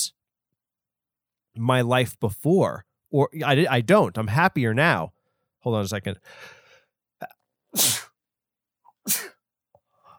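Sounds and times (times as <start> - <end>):
speech: 1.6 - 6.6, 7.2 - 8.0, 9.1 - 9.3
person sneezing: 7.8 - 8.1, 9.1 - 9.4
short catching inhales before sneezes: 7.8 - 8.1, 9.1 - 9.3.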